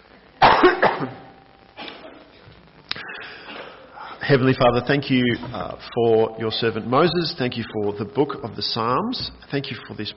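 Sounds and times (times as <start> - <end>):
person coughing harshly: 0.4 - 1.2, 3.3 - 3.9
speech: 4.3 - 10.1.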